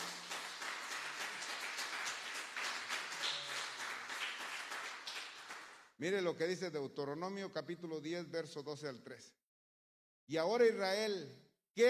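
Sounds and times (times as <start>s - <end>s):
dense sustained audience applause: 0.0s - 5.9s
speech: 6.0s - 9.4s, 10.3s - 11.8s.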